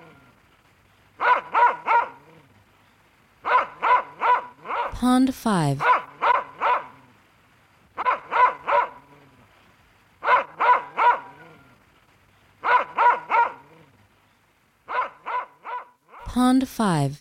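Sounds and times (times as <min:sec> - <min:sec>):
dog barking: 0:01.2 - 0:02.4, 0:03.4 - 0:05.0, 0:05.8 - 0:07.1, 0:08.0 - 0:09.3, 0:10.2 - 0:11.6, 0:12.6 - 0:13.9, 0:14.9 - 0:16.3
speech: 0:05.0 - 0:05.9, 0:16.5 - 0:17.1.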